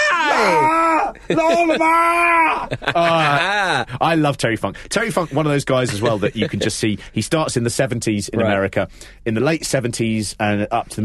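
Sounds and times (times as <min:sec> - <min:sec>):
man imitating a wrestler screaming in pain: 0:00.0 - 0:02.8
speech: 0:00.4 - 0:11.0
laughter: 0:01.0 - 0:04.0, 0:05.1 - 0:06.8.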